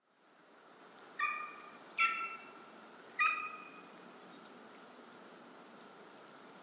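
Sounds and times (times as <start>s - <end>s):
low background hiss: 0.0s - 6.6s
golden eagle calling in thin ringing yelps: 1.2s - 2.5s, 3.2s - 3.8s.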